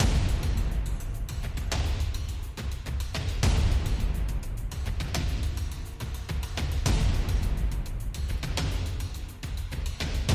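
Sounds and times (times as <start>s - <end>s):
percussion overlay: 0.0s - 10.3s.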